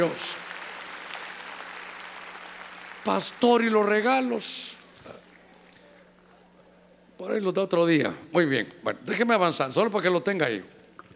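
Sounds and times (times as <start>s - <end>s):
speech: 0.0s - 0.4s, 3.0s - 5.2s, 7.2s - 10.8s
audience clapping: 0.0s - 4.4s.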